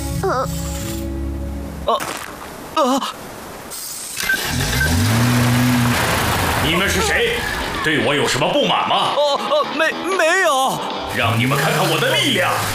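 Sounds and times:
speech: 0:00.2 - 0:00.8, 0:01.8 - 0:03.3, 0:06.6 - 0:12.7
racing car engine revving: 0:04.4 - 0:07.8.

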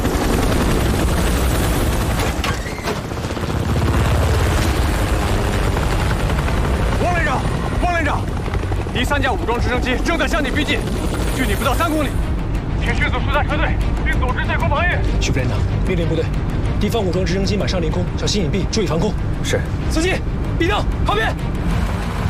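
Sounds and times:
armed helicopter rotors roaring: 0:00.0 - 0:22.2.

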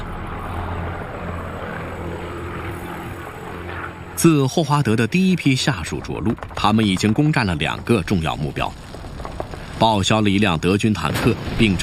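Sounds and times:
Spitfire fighter plane piston engine roar: 0:00.0 - 0:06.6
speech: 0:04.2 - 0:08.9, 0:09.8 - 0:11.8.

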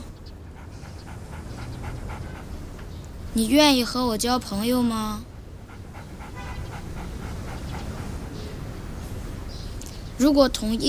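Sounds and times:
dog panting: 0:00.0 - 0:03.2, 0:05.4 - 0:09.0
speech: 0:03.4 - 0:05.3, 0:10.2 - 0:10.8.

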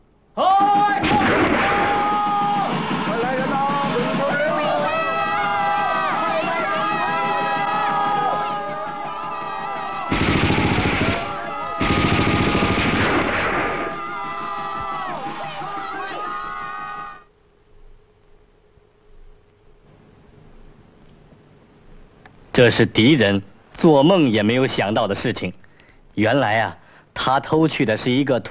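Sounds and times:
several voices shouting: 0:00.4 - 0:17.3
bursts of rapid gunfire: 0:00.6 - 0:16.8
speech: 0:22.6 - 0:25.6, 0:26.2 - 0:28.5.

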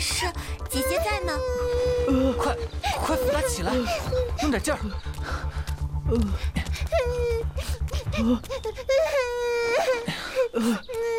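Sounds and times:
speech: 0:00.2 - 0:01.7, 0:02.3 - 0:05.4, 0:06.1 - 0:07.3, 0:08.2 - 0:08.7, 0:10.6 - 0:11.1
child crying in wavering high wails and sobs: 0:00.7 - 0:04.4, 0:06.2 - 0:11.1.

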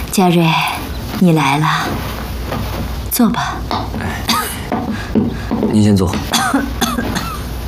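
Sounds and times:
speech: 0:00.2 - 0:04.4, 0:05.1 - 0:07.2
woman coughing harshly: 0:04.2 - 0:04.7, 0:06.3 - 0:07.5.

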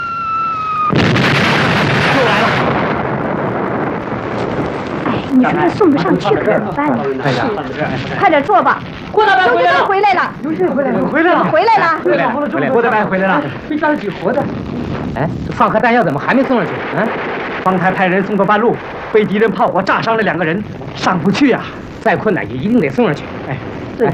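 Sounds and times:
rumble of enemy shelling on a battlefield position: 0:00.0 - 0:24.1
enemy artillery blast on a battlefield position: 0:00.7 - 0:09.9, 0:14.4 - 0:22.2
people talking and shouting: 0:04.5 - 0:24.1.

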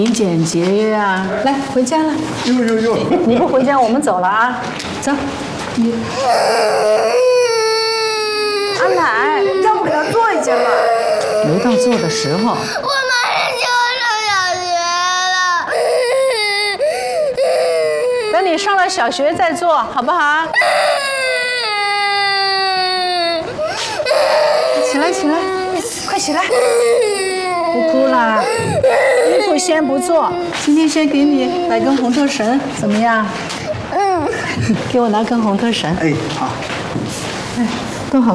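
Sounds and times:
speech: 0:00.0 - 0:07.2, 0:08.8 - 0:13.2, 0:18.5 - 0:21.1, 0:26.2 - 0:33.6, 0:34.2 - 0:37.0, 0:37.6 - 0:38.3
young girl crying and wailing: 0:06.2 - 0:18.6, 0:20.6 - 0:30.6, 0:33.9 - 0:34.5.

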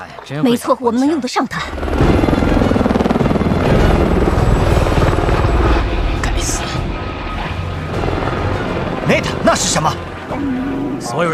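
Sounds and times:
speech: 0:00.0 - 0:02.7, 0:09.1 - 0:11.3
psychological warfare military aircraft flying low overhead: 0:01.6 - 0:11.3.

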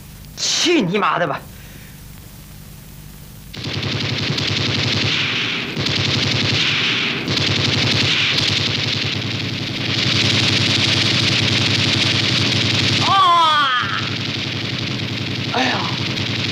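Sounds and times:
speech: 0:00.6 - 0:01.5
rapid gunfire: 0:03.5 - 0:16.5.

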